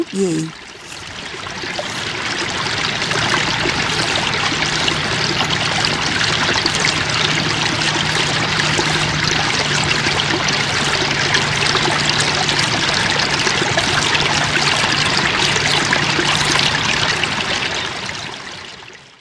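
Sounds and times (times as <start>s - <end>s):
speech: 0.0s - 0.6s
babbling stream trickling over a large rock covered in small plants: 0.4s - 19.2s.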